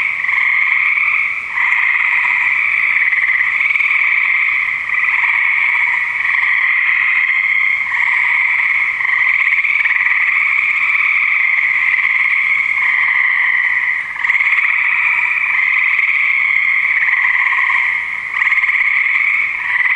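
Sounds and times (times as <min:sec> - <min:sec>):
frogs calling in a dense chorus: 0:00.0 - 0:19.9.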